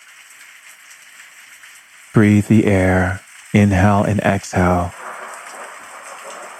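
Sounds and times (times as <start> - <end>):
steady heavy rain: 0.0 - 6.5
speech: 2.2 - 5.0.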